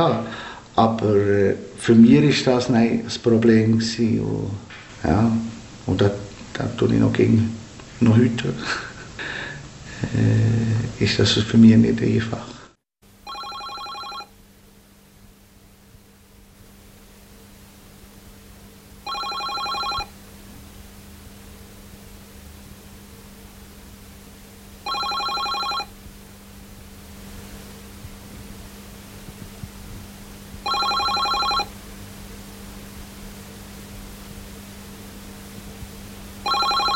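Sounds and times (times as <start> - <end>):
speech: 0.0 - 8.9, 10.0 - 12.5
steady low hum: 0.0 - 36.9
telephone ringing with an incoming call: 13.2 - 14.3, 19.0 - 20.1, 24.8 - 25.9, 30.6 - 31.7, 36.4 - 36.9.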